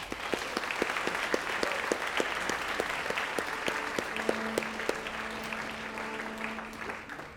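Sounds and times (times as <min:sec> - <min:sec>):
audience applause: 0:00.0 - 0:07.3
faint sustained humming tone: 0:03.5 - 0:07.3.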